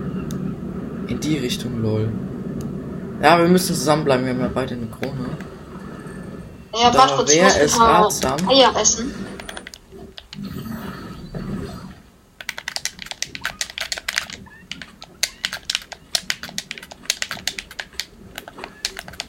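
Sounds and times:
low noise: 0.0s - 10.1s
speech: 1.1s - 2.3s, 3.2s - 5.5s, 6.7s - 9.3s
computer keyboard typing: 8.1s - 8.6s, 9.4s - 10.4s, 12.4s - 19.2s.

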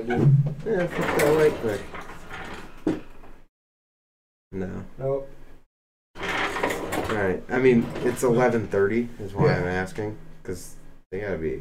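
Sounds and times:
speech: 0.0s - 2.0s, 4.5s - 5.3s, 7.2s - 11.5s
door rolling and shutting with a dull thud: 0.0s - 2.9s, 6.2s - 8.8s.

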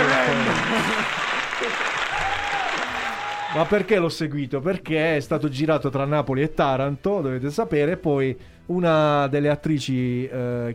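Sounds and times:
steady dense clapping from a group: 0.0s - 3.9s
laughter: 0.3s - 1.8s
speech: 3.6s - 10.7s.

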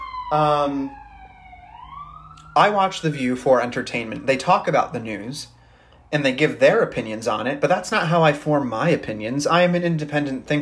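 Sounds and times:
emergency vehicle siren wailing outside: 0.0s - 7.6s
speech: 0.3s - 1.0s, 2.6s - 10.6s.

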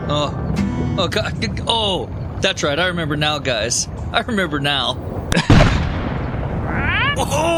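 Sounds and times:
speech: 0.1s - 0.4s, 1.0s - 5.7s, 7.2s - 7.5s
cannon firing with a booming blast: 5.3s - 6.7s
person calling out: 6.7s - 7.5s.

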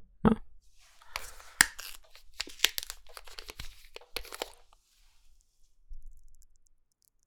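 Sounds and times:
drink pack being opened with crinkling, tearing and clicks: 0.8s - 5.2s.

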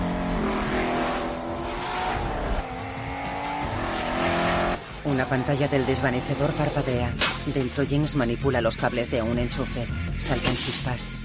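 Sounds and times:
car tires squealing around a curve on a frozen lake: 0.0s - 7.5s
two car engines roaring on a frozen lake: 0.0s - 9.0s
speech: 5.1s - 11.2s.

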